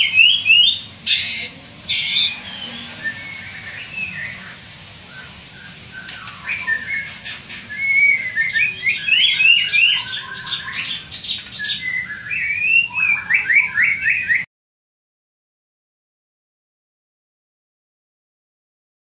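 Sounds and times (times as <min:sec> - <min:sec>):
steady hiss: 0:00.0 - 0:12.2
white-rumped shama whistling song: 0:00.0 - 0:14.5.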